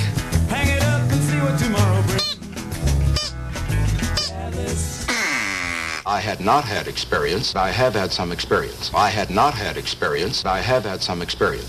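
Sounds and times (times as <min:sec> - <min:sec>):
music with a pulsing low bass: 0:00.0 - 0:05.2
duck quacking and honking: 0:05.1 - 0:06.2
speech: 0:06.1 - 0:11.6.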